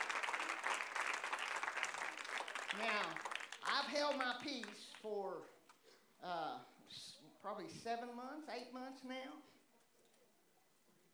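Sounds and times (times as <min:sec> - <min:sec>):
congregation clapping hands in praise during a church service: 0:00.0 - 0:05.4
speech: 0:02.8 - 0:05.6, 0:06.2 - 0:09.6.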